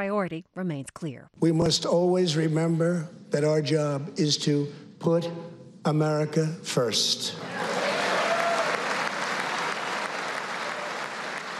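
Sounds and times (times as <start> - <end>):
speech: 0.0 - 7.7
sustained applause from a large congressional audience: 7.4 - 11.5
faint whistles and cheers from a congressional audience: 7.5 - 11.5.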